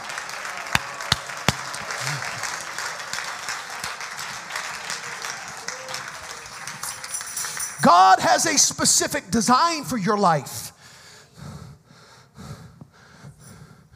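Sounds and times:
audience applauding with many hands clapping: 0.0 - 8.9
speech: 7.9 - 10.7.

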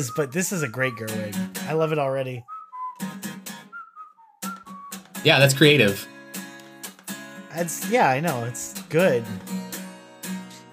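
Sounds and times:
man whistling a tune in an acoustic song cover: 0.0 - 1.7, 2.4 - 5.7
speech: 0.0 - 3.3, 5.2 - 6.1, 7.6 - 9.6.

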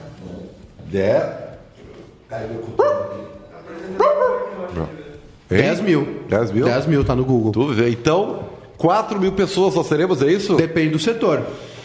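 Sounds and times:
room noise: 0.0 - 11.8
speech: 0.9 - 1.4, 2.3 - 11.7
dog barking: 2.8 - 3.4, 4.0 - 4.6.

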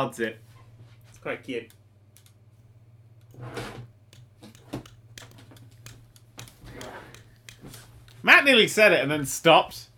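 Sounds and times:
speech: 0.0 - 0.5, 1.2 - 1.8, 3.4 - 3.9, 7.7 - 9.9
steady low electrical hum: 0.0 - 9.9
keys pressed on a ZX Spectrum computer keyboard: 4.1 - 8.2.

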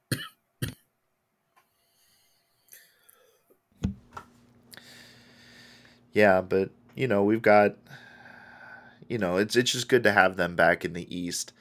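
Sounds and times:
person coughing: 0.1 - 0.8
speech: 6.2 - 8.0, 9.1 - 11.6.

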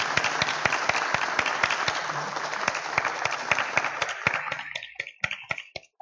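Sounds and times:
small audience clapping to welcome a debut author: 0.0 - 6.0.

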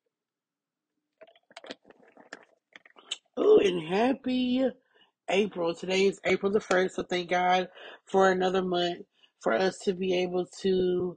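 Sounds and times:
person sipping water: 1.2 - 3.3
wet slurping mouth noises: 1.2 - 3.4
speech: 3.6 - 11.1.

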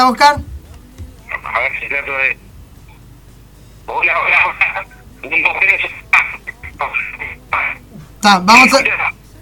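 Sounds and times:
speech: 0.0 - 0.5, 1.6 - 2.4, 3.9 - 6.0, 6.8 - 9.2
low hum: 0.0 - 9.3
voice breaking up on a choppy band-limited phone line: 1.3 - 2.4, 3.9 - 9.2
crackling interference: 1.3 - 3.1, 3.8 - 7.9, 8.6 - 9.2.

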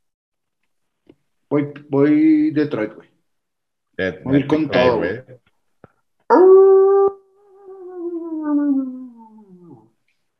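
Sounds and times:
speech: 1.5 - 3.1, 4.0 - 5.5, 6.3 - 6.8
voice imitating an ambulance siren winding down: 6.3 - 9.9.

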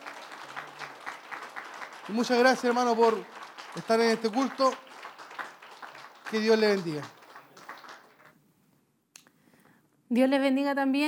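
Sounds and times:
congregation applauding: 0.0 - 8.3
speech: 2.1 - 4.8, 6.3 - 7.2, 10.1 - 11.0.

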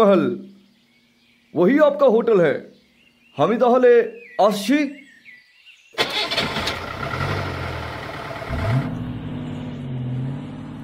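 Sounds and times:
speech: 0.0 - 0.5, 1.5 - 2.7, 3.4 - 5.0
car engine as a car drives away: 6.0 - 10.8.

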